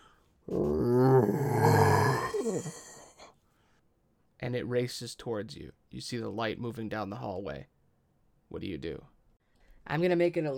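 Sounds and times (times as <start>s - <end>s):
monster howl: 0.5s - 3.1s
ragged monster snarls: 0.5s - 3.1s
speech: 4.4s - 7.7s, 8.5s - 9.1s, 9.8s - 10.5s.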